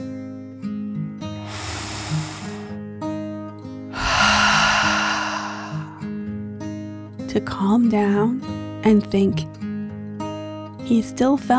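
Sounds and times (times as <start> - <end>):
deep breath in and out: 1.4 - 2.8, 3.9 - 6.2
speech: 7.4 - 9.6, 10.9 - 11.5.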